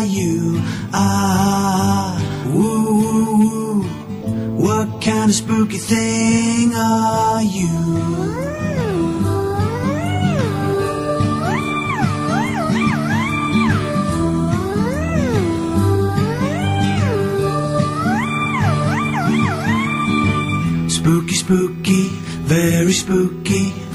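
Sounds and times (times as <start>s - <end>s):
speech: 0.0s - 1.8s, 5.3s - 8.7s, 22.5s - 23.8s
steady musical backing: 2.2s - 23.9s
black cat meowing: 8.2s - 20.8s.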